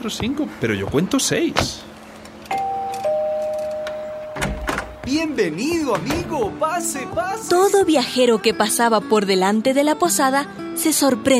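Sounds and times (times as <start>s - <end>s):
speech: 0.0s - 2.0s, 5.1s - 11.3s
small bell at an inn ringing as a traveler enters: 2.5s - 5.3s.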